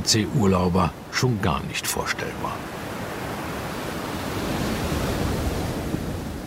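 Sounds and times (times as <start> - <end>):
speech: 0.0 - 2.8
ocean surf waves breaking: 0.0 - 6.4.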